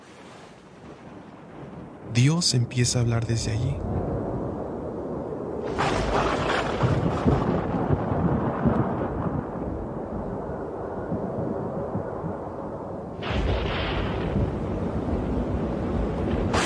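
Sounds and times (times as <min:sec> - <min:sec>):
thunderstorm with deep rolling thunder: 0:00.8 - 0:16.6
speech: 0:02.2 - 0:04.0.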